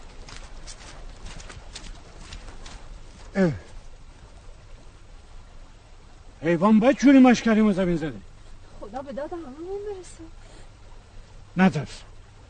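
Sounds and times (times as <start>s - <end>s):
footsteps squelching through a muddy road: 0.0s - 4.6s
speech: 3.4s - 3.7s, 6.4s - 8.3s, 8.9s - 10.4s, 11.6s - 12.1s.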